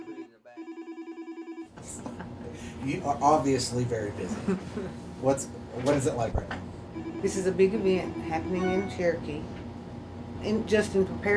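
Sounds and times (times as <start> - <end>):
office telephone ringing: 0.0 - 1.7, 6.9 - 9.2
speech: 2.8 - 9.6, 10.4 - 11.3.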